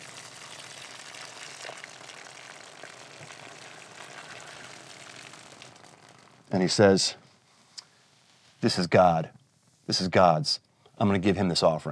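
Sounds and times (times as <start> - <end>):
water being poured out: 0.0 - 7.1
speech: 6.5 - 7.2, 8.6 - 11.9.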